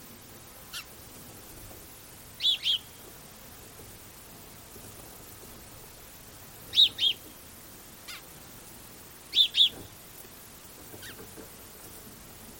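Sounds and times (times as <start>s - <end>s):
house sparrow doubled chirps: 2.4s - 3.0s, 6.7s - 7.2s, 9.3s - 9.8s.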